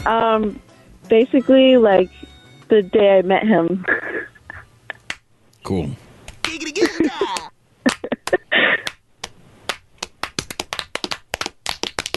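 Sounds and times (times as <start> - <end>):
speech: 0.0 - 4.1, 5.7 - 6.0
people laughing: 3.8 - 5.0, 6.4 - 8.9
several people clapping in the room: 6.3 - 12.1.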